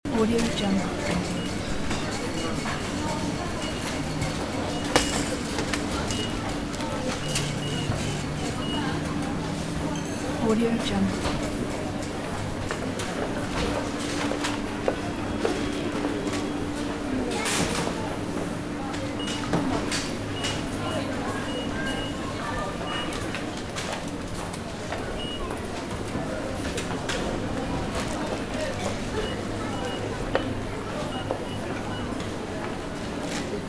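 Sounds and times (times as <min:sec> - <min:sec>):
big supermarket ambience: 0:00.0 - 0:33.6.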